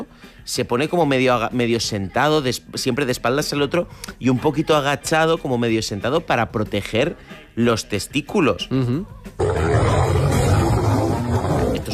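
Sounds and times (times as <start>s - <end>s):
speech: 0.4s - 9.8s
lions fighting, snarling and roaring: 9.4s - 11.9s.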